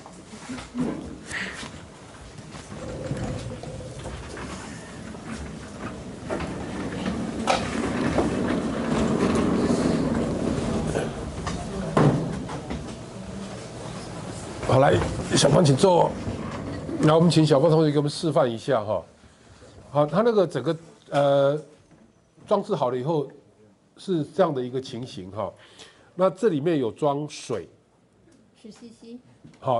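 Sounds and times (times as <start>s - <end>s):
chair dragged across a hard floor: 0.0s - 17.7s
speech: 14.8s - 16.4s, 17.0s - 19.2s, 19.9s - 21.7s, 22.5s - 23.4s, 24.0s - 27.8s, 28.6s - 29.7s.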